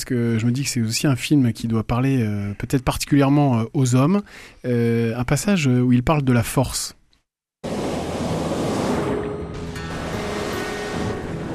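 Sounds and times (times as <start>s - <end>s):
speech: 0.0s - 7.0s
sea waves: 7.6s - 11.5s
strong wind gusts: 7.6s - 11.5s.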